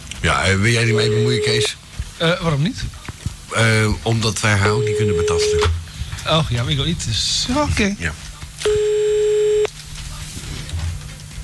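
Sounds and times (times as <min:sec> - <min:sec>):
speech: 0:00.2 - 0:08.8
telephone line tone while calling a restaurant: 0:00.8 - 0:01.7, 0:04.7 - 0:05.7, 0:08.6 - 0:09.7.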